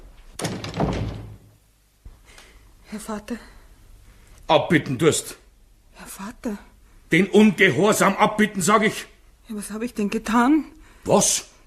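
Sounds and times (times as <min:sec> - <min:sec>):
door slamming shut: 0:00.3 - 0:01.6
speech: 0:02.9 - 0:03.6, 0:04.5 - 0:05.4, 0:06.0 - 0:11.5.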